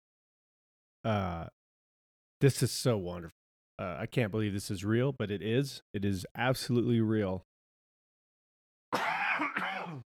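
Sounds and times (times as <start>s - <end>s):
speech: 1.0s - 1.6s, 2.4s - 7.5s
harsh raspy cough from a lingering chronic cough: 8.9s - 10.1s.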